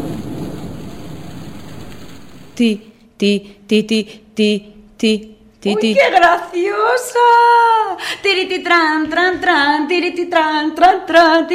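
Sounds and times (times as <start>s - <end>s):
steady heavy rain falling: 0.0s - 2.6s
heavy low rumble: 0.0s - 2.7s
speech: 2.6s - 11.5s.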